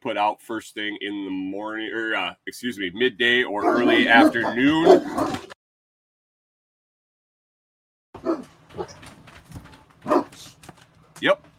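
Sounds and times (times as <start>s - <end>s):
speech: 0.0s - 5.4s
dogs barking: 3.6s - 5.5s, 8.2s - 9.1s, 10.0s - 10.5s.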